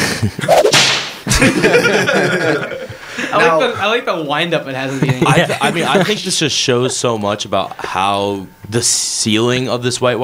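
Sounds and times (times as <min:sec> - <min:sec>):
speech: 0:00.2 - 0:00.8, 0:01.4 - 0:10.2
whip cracking: 0:00.5 - 0:01.2
laughter: 0:01.2 - 0:03.5, 0:04.9 - 0:06.3.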